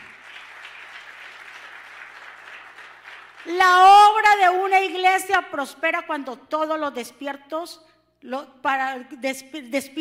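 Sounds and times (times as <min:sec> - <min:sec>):
audience applauding loudly: 0:00.0 - 0:03.5
speech: 0:03.4 - 0:09.9.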